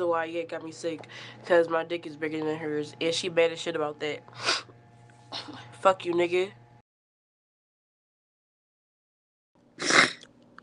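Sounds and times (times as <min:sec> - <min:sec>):
speech: 0:00.0 - 0:04.7, 0:05.3 - 0:06.6
sharp wet sniffle: 0:09.8 - 0:10.2.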